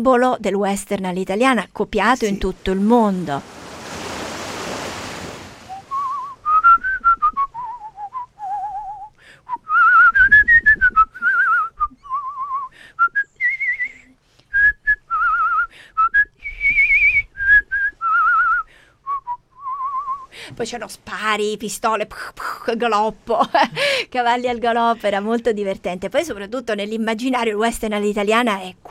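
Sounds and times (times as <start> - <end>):
speech: 0.0 - 3.6, 20.6 - 28.8
brief burst of broadband rushing noise: 3.4 - 6.3
lone vigorous whistled melody in Italian western film style: 5.7 - 20.3.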